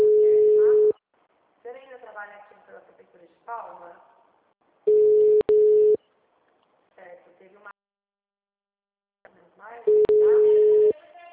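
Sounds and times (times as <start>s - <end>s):
telephone call tone as a call is forwarded to voicemail: 0.0s - 1.0s, 4.9s - 6.0s, 9.9s - 11.0s.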